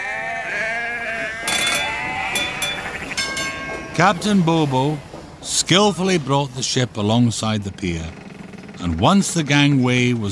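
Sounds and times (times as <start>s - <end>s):
large flock of sheep bleating: 0.0s - 3.9s
sharp clattering bursts: 1.4s - 10.0s
speech: 4.0s - 8.2s, 8.8s - 10.3s.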